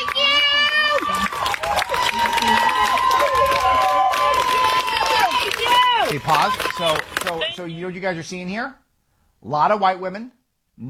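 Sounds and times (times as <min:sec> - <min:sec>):
female protesters cheering with high shouted voices: 0:00.0 - 0:07.0
crowd of female protesters clapping for a defense attorney: 0:00.0 - 0:07.7
speech: 0:06.3 - 0:08.8, 0:09.4 - 0:10.8.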